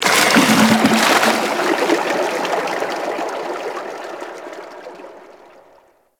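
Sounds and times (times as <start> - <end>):
loot crate water release: 0.0 - 5.7.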